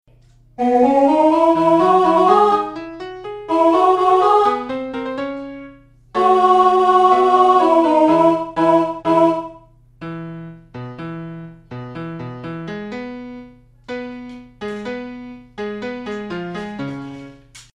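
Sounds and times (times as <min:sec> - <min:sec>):
alto voice singing a D in a classical piece: 0:00.6 - 0:05.5, 0:06.1 - 0:09.7.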